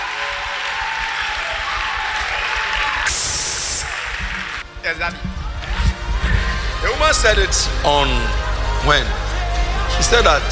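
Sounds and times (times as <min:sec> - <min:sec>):
crowd clapping hands: 0:00.0 - 0:05.3
brief high-pitched hiss or whistle: 0:03.0 - 0:10.4
speech: 0:04.9 - 0:05.4, 0:06.9 - 0:09.2, 0:09.9 - 0:10.4.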